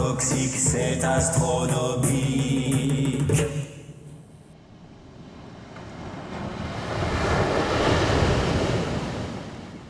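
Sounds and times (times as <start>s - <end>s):
speech: 0.2s - 2.7s
ocean surf roaring: 4.5s - 9.8s.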